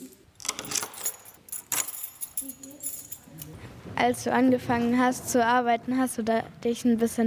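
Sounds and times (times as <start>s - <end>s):
castle guide's bunch of keys jangling while unlocking and locking doors: 0.0s - 3.5s
speech: 4.0s - 7.2s.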